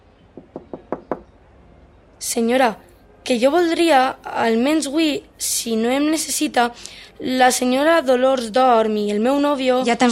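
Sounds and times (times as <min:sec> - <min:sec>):
knocking on a door: 0:00.4 - 0:01.3
speech: 0:02.2 - 0:10.0.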